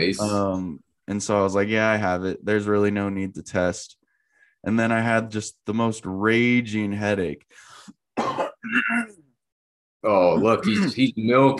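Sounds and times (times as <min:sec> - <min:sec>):
speech: 0:00.0 - 0:04.0, 0:04.6 - 0:09.2, 0:10.0 - 0:11.5
person coughing: 0:08.2 - 0:09.2, 0:10.4 - 0:11.1
rough drawn-out throat clearing: 0:08.2 - 0:09.2, 0:10.4 - 0:11.1.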